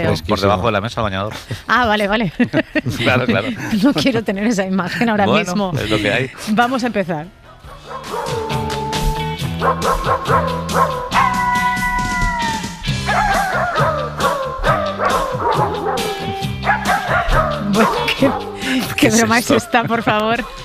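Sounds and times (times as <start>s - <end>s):
speech: 0.0s - 7.4s, 9.6s - 11.2s, 17.8s - 20.6s
laughter: 1.3s - 6.8s, 14.9s - 20.6s
dog yipping and whining: 7.7s - 18.6s
dog barking: 9.6s - 11.6s, 13.0s - 18.6s.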